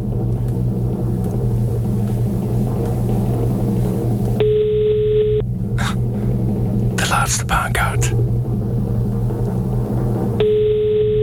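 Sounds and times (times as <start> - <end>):
constant low rumbling hum: 0.0 - 11.2
single steady electronic telephone tone: 4.4 - 5.4, 10.4 - 11.2.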